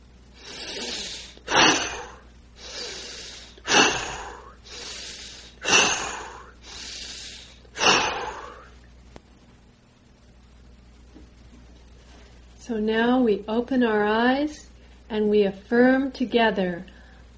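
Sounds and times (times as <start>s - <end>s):
deep vigorous breaths during a guided breathing exercise: 0.3s - 8.8s
speech: 12.7s - 16.9s.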